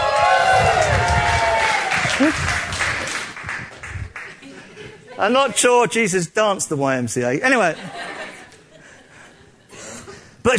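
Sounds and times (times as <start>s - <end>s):
audience cheering: 0.0s - 3.2s
scattered clapping: 0.0s - 4.7s
laughter: 4.3s - 5.8s, 7.5s - 10.3s
speech: 5.2s - 8.1s.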